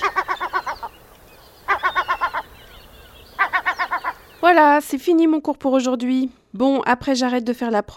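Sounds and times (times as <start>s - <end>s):
Atlantic puffin calling: 0.0s - 4.6s
faint hiss: 0.0s - 7.0s
speech: 4.5s - 7.9s.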